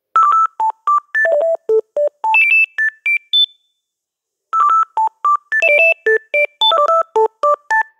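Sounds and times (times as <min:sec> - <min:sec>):
ringtone: 0:00.2 - 0:03.6, 0:04.6 - 0:07.9.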